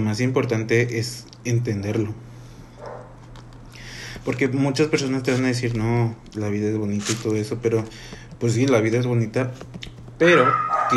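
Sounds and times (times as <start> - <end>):
speech: 0.0 - 2.3, 4.2 - 10.9
steady low hum: 0.0 - 10.9
faint dog barks and short yelps: 2.8 - 3.2, 10.2 - 10.9.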